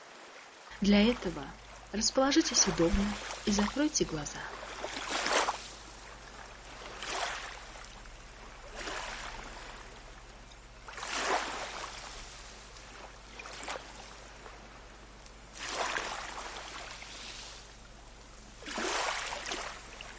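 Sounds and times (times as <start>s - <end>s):
water sloshing and lapping against a ship's hull: 0.0s - 20.1s
faint steady low hum: 0.7s - 20.1s
speech: 0.8s - 4.6s.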